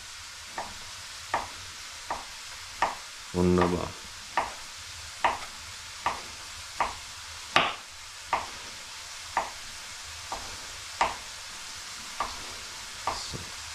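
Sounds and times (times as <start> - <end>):
knife chopping food into small pieces on a board: 0.6 - 3.0, 3.6 - 9.7, 10.3 - 11.3, 12.1 - 13.4
speech: 3.3 - 4.0.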